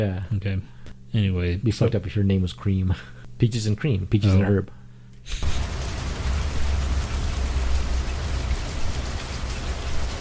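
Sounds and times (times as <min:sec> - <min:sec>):
speech: 0:00.0 - 0:05.5
steady rain: 0:05.4 - 0:10.2.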